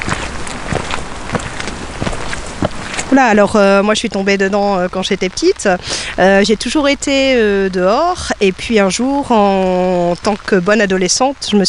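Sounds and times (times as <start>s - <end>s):
soft louder patters or thuds: 0.0s - 3.6s
winter rain falling outdoors at the edge of a forest pond: 0.0s - 11.6s
speech: 3.1s - 11.6s.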